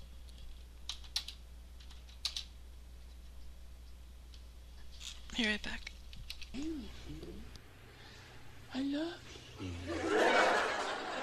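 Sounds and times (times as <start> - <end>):
low steady hum: 0.0 - 11.2
keystrokes on a computer keyboard being checked for a fault: 0.9 - 2.5
speech: 5.4 - 7.5, 8.8 - 10.6
laughter: 9.7 - 11.2.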